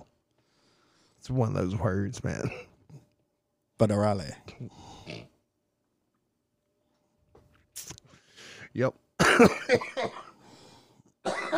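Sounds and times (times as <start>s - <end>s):
speech: 1.2s - 2.7s, 3.8s - 5.3s, 8.7s - 10.2s
person giving a preemptive warning cough: 9.2s - 10.4s, 11.2s - 11.5s.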